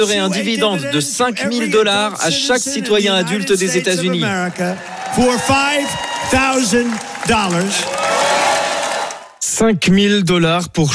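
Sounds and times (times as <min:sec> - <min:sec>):
speech: 0:00.0 - 0:08.2, 0:09.6 - 0:10.9
crowd clapping and applauding: 0:03.6 - 0:09.4
loud crowd whooping and cheering: 0:04.6 - 0:09.4.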